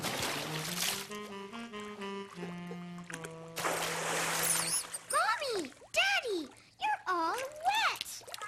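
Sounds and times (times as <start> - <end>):
water splashing in a bathtub as a child plays: 0.0 - 1.2, 3.1 - 8.4
light musical tune: 0.7 - 3.6
child making playful sing-song vocal sounds: 5.1 - 8.4.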